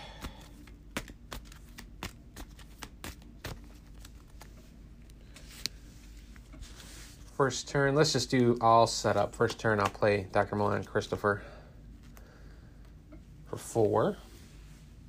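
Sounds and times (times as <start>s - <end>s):
deck of playing cards being shuffled during a card game: 0.2s - 7.3s
speech: 7.4s - 11.5s, 13.8s - 14.2s.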